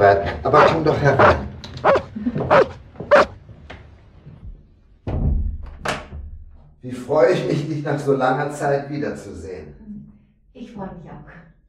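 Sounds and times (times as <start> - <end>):
speech: 0.0 - 1.4, 2.2 - 2.8, 7.2 - 9.4
dog barking: 0.5 - 3.3.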